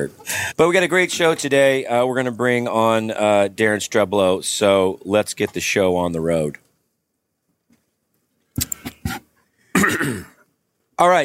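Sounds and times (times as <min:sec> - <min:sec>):
speech: 0:00.0 - 0:06.6, 0:11.0 - 0:11.2
man coughing: 0:09.8 - 0:10.4
man's rough throat-clearing hack: 0:09.8 - 0:10.4.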